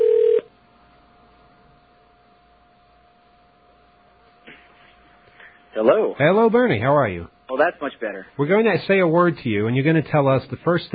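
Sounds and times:
electronic telephone keypad tone: 0:00.0 - 0:00.5
speech: 0:05.8 - 0:10.9.

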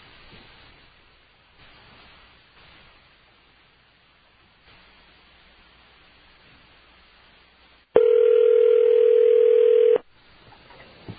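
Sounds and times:
telephone dial tone: 0:08.0 - 0:10.0.

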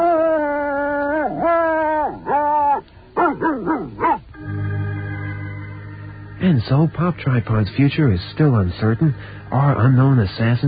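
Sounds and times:
dog howling: 0:00.0 - 0:04.3
speech: 0:06.5 - 0:10.6.

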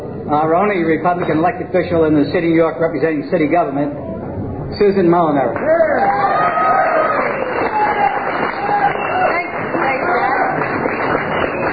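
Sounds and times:
speech: 0:00.3 - 0:04.1, 0:04.7 - 0:06.3
large crowd cheering and shouting outside: 0:05.5 - 0:11.6.

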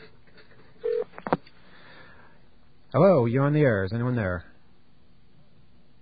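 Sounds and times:
telephone dial tone: 0:00.8 - 0:01.4
speech: 0:02.9 - 0:04.5.

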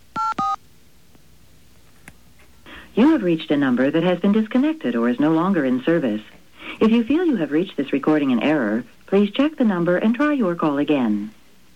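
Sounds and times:
touch-tone telephone dialing beeps: 0:00.2 - 0:00.6
speech: 0:02.9 - 0:11.4.

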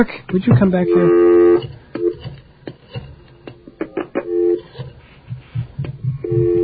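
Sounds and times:
speech: 0:00.0 - 0:02.1
telephone line tones while a call is dialed: 0:00.8 - 0:02.2, 0:04.2 - 0:04.6, 0:06.2 - 0:06.6.

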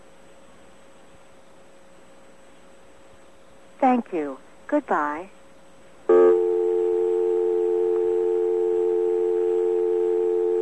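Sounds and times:
speech: 0:03.8 - 0:05.4
telephone dial tone: 0:06.1 - 0:10.5.

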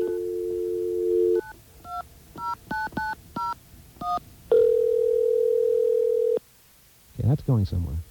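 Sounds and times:
telephone dial tone: 0:00.0 - 0:06.4
touch-tone telephone keypad beeps: 0:01.4 - 0:04.2
speech: 0:07.3 - 0:08.0.

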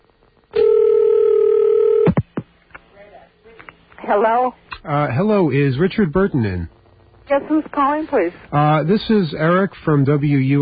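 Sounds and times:
electronic telephone ringing tone down the line: 0:00.6 - 0:02.1
speech: 0:04.1 - 0:10.6.

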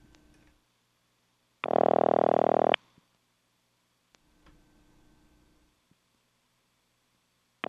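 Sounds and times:
telephone ringback tone through an Automatic Electric step switch: 0:01.6 - 0:02.8.

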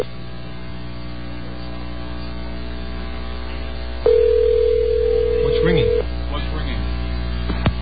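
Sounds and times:
low hum: 0:00.0 - 0:07.7
telephone line ring tone during a call to an 800 number: 0:04.0 - 0:06.0.

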